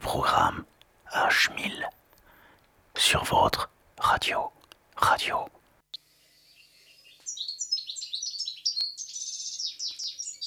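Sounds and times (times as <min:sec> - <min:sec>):
speech: 0:00.1 - 0:02.0, 0:03.0 - 0:05.6
European goldfinch song: 0:06.1 - 0:10.4.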